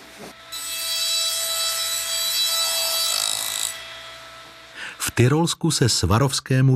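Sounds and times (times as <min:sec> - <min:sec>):
glass grinding machine whirring with an abrasive rasp in a factory in Tyrol: 0:00.0 - 0:05.4
speech: 0:05.1 - 0:06.7.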